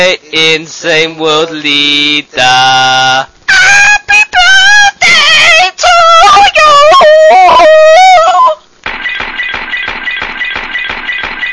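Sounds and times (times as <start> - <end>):
speech: 0.0 - 3.9
person singing: 0.0 - 8.6.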